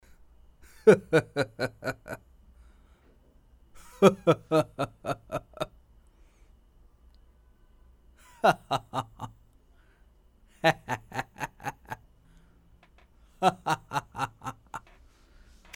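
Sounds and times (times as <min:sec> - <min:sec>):
sinister and sly laughter: 0:03.8 - 0:05.7, 0:08.2 - 0:09.4, 0:10.6 - 0:12.0, 0:13.4 - 0:15.0.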